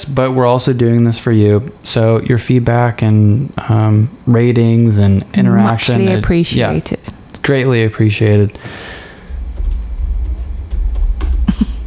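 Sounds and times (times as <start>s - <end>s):
speech: 0.1s - 9.0s
steady low rumble: 9.1s - 11.8s
typing on a computer keyboard: 9.2s - 11.8s.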